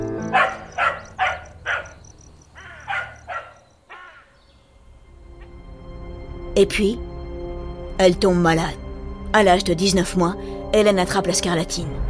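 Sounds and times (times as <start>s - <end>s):
outdoor noise: 0.0s - 6.0s
dog barking: 0.2s - 4.2s
speech: 6.6s - 7.1s, 8.0s - 12.0s.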